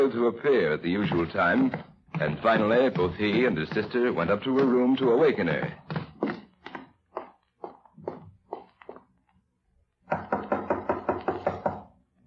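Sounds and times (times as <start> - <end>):
speech: 0.0 - 5.9
knocking on a bedroom door: 10.1 - 11.9.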